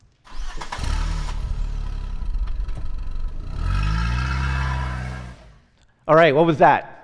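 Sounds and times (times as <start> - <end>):
car engine starting: 0.0 - 5.7
speech: 6.1 - 6.9.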